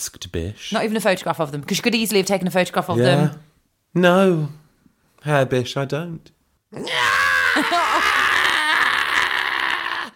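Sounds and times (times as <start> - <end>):
speech: 0.0 - 4.6, 5.2 - 8.1
man screaming: 6.7 - 10.1.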